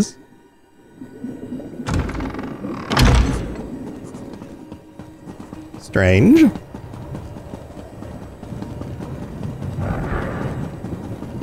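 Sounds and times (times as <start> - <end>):
speech: 0.0 - 0.2, 5.8 - 6.7
door opening with a thump and creak: 1.8 - 3.7.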